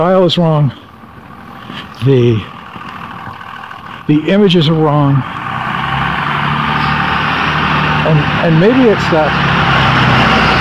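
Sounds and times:
speech: 0.0s - 0.8s, 1.7s - 2.6s, 4.1s - 5.4s, 8.1s - 9.5s
diesel truck engine running: 0.0s - 10.5s.

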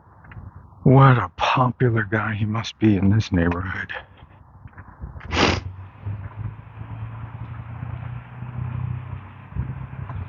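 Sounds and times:
pickup truck with loud muffler rumbling: 0.1s - 10.2s
speech: 0.9s - 4.1s
brief sharp hiss or clatter: 5.2s - 5.7s.

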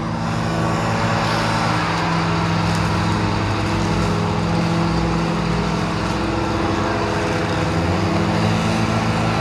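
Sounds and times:
riding lawn mower engine with a box on the back: 0.0s - 9.3s.

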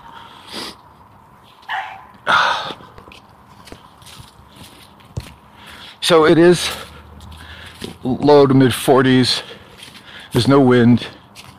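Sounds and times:
dog barking outdoors: 1.7s - 2.2s
speech: 6.1s - 6.9s, 8.1s - 9.5s, 10.3s - 11.2s.

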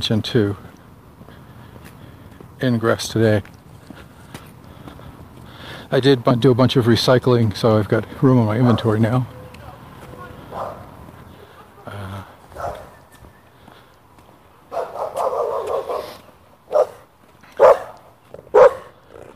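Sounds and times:
speech: 0.0s - 0.7s, 2.6s - 3.6s, 5.9s - 9.4s
faint footsteps: 0.5s - 5.8s, 8.0s - 19.3s
dog barking: 10.5s - 11.8s, 12.5s - 13.1s, 14.7s - 19.3s.

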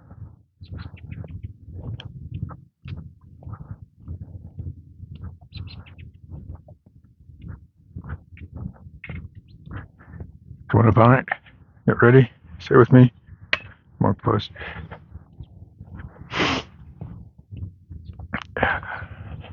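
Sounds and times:
sparrows chirping: 0.6s - 1.5s, 5.2s - 6.4s
speech: 10.7s - 13.1s, 14.3s - 14.8s.

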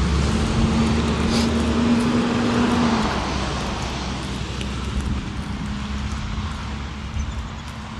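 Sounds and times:
heavy natural gas garbage truck engine rumbling: 0.0s - 7.9s
road noise: 0.0s - 7.9s.

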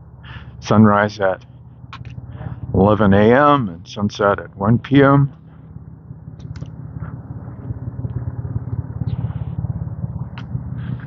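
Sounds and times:
low car engine rumble outside: 0.0s - 11.0s
speech: 0.7s - 1.5s, 2.8s - 5.4s
faint clicks and ticks: 6.4s - 11.0s.

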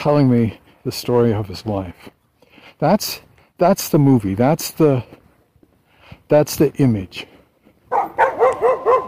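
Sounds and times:
speech: 0.0s - 2.2s, 2.8s - 5.2s, 6.3s - 7.3s
dog barking: 7.9s - 9.0s.

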